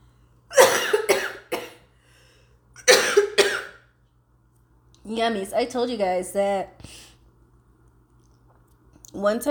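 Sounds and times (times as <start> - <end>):
person coughing: 0.5 - 1.9, 2.8 - 3.8
speech: 5.1 - 7.0, 9.2 - 9.4.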